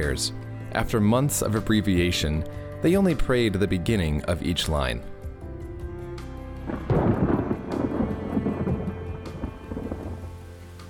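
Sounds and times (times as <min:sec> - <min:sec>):
speech: 0:00.0 - 0:05.1
low rumbling like thunder: 0:05.5 - 0:10.7
heavy rain downpour: 0:06.7 - 0:10.8.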